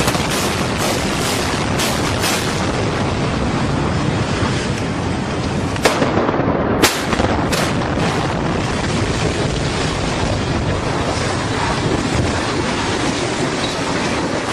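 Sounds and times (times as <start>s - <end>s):
small explosions around a city block: 0.0s - 3.5s, 5.7s - 13.5s
constant rushing roar of wind-like noise: 0.0s - 14.5s.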